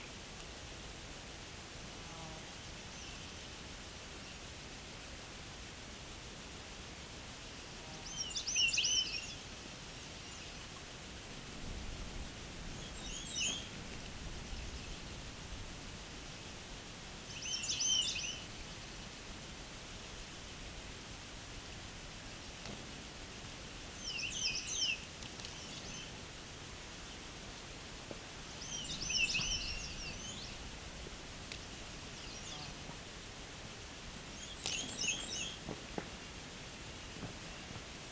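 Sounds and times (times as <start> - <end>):
soft steady hiss of air and ambience: 0.0 - 38.0
birds singing in a quiet natural setting: 12.6 - 15.1, 17.3 - 18.8, 24.0 - 26.1, 28.5 - 30.8, 32.1 - 32.8, 34.3 - 35.6.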